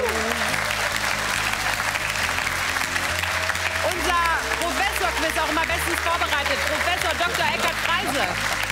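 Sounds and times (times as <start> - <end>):
television quiz show studio audience cheering: 0.0 - 4.8
music playing: 0.0 - 8.7
television quiz show studio audience applause: 0.0 - 8.7.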